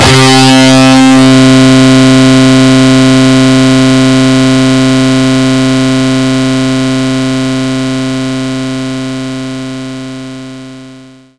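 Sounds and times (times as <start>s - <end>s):
distorted guitar playing low C3: 0.0s - 7.9s.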